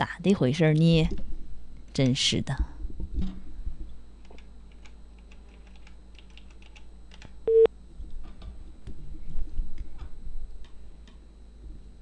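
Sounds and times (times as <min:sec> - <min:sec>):
speech: 0:00.0 - 0:01.2, 0:02.0 - 0:02.7
telephone busy tone beep: 0:07.5 - 0:07.7.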